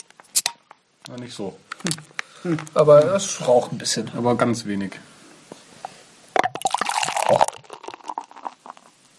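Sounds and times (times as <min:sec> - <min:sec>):
speech: 0:01.1 - 0:05.1
beer pouring into a glass: 0:06.3 - 0:09.1.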